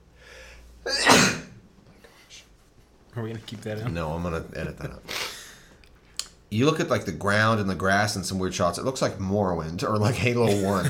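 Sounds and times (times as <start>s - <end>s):
person sneezing: 0.8s - 1.6s
speech: 3.2s - 5.2s, 6.5s - 10.8s.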